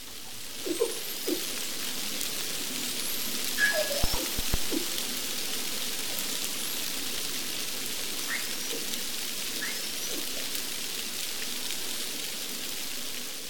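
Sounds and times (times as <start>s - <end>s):
constant hiss of underwater noise: 0.0s - 13.4s
dolphin whistles recorded by underwater hydrophone: 3.5s - 4.9s, 8.3s - 8.9s, 9.5s - 10.5s.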